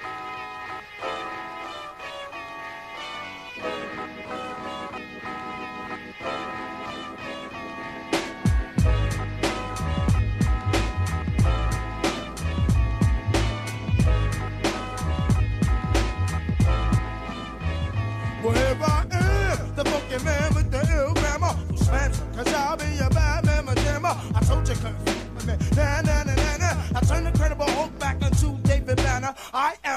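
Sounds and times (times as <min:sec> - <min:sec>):
soft melodic instrumental of a hip-hop song intro: 0:00.0 - 0:29.2
booming hip-hop bassline: 0:03.6 - 0:29.3
steady punchy hip-hop drum beat: 0:08.2 - 0:17.2, 0:18.6 - 0:29.3.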